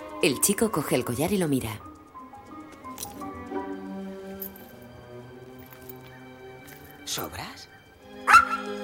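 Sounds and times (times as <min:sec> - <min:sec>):
speech: 0:00.2 - 0:01.9
small skeleton dog yipping: 0:08.2 - 0:08.8.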